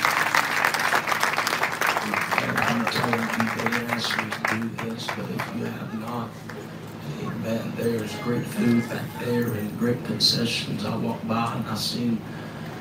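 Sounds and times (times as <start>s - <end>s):
audience clapping hands for praise team: 0.0s - 6.7s
speech: 4.0s - 12.4s.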